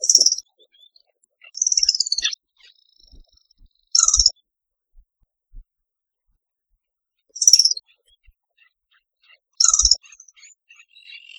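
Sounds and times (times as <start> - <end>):
Asthenes baeri canastero calling: 0.0 - 4.4, 7.4 - 11.3.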